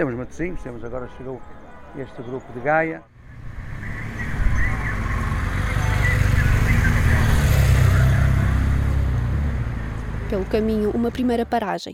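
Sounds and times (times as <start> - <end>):
speech: 0.0 - 3.1, 10.3 - 11.9
heavy trucks rolling past in a truck drivers' convoy: 3.2 - 11.6.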